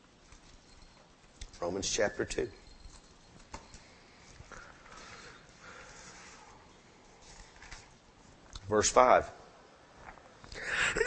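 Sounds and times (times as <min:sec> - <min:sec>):
speech: 0:01.6 - 0:02.6, 0:08.7 - 0:09.4
rising breathy inhale: 0:04.0 - 0:06.6.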